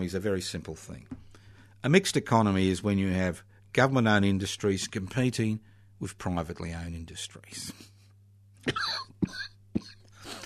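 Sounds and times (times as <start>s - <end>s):
speech: 0.0s - 1.2s, 1.8s - 8.0s, 8.6s - 9.5s
steady low electrical hum: 0.0s - 10.4s
person coughing: 8.6s - 10.4s.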